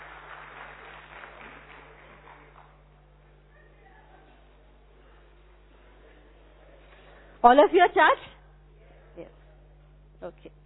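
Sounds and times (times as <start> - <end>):
audience clapping: 0.0 - 4.4
speech: 7.4 - 8.3, 10.2 - 10.6.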